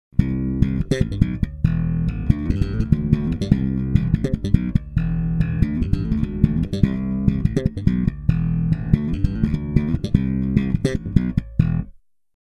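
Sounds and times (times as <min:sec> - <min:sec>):
bass guitar on neck and bridge pickups: 0:00.1 - 0:12.0.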